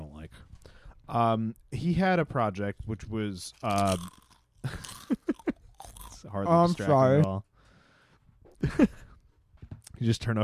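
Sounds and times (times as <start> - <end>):
speech: 1.1 - 5.2, 6.3 - 7.5, 8.6 - 9.0, 10.0 - 10.4
crunchy chewing at the microphone: 3.5 - 6.3.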